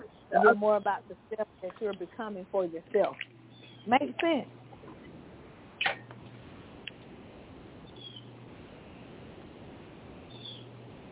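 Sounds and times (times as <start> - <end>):
backyard birdsong with chirps and calls: 0.0 - 7.0, 7.8 - 8.5, 10.2 - 10.9
steady hiss: 0.0 - 11.1
speech: 0.3 - 4.6.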